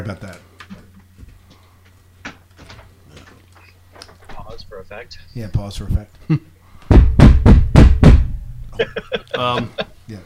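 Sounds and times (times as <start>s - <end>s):
speech: 0.0s - 0.5s, 4.8s - 6.6s, 8.8s - 10.2s
heavy banging on a door: 6.9s - 8.6s
laughter: 8.8s - 10.0s.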